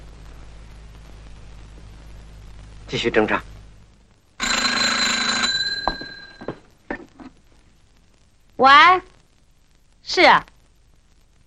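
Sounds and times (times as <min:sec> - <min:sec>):
speech: 0:02.9 - 0:03.5, 0:08.6 - 0:09.1, 0:10.1 - 0:10.5
loud metallic telephone bell ringing: 0:04.4 - 0:06.7.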